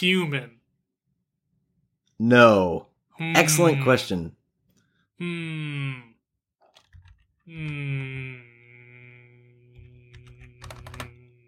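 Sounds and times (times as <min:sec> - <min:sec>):
speech: 0:00.0 - 0:00.6, 0:02.2 - 0:04.4, 0:05.2 - 0:06.1, 0:07.5 - 0:08.5
typing on a computer keyboard: 0:06.6 - 0:07.8, 0:09.8 - 0:11.4
steady electrical hum: 0:07.5 - 0:11.4.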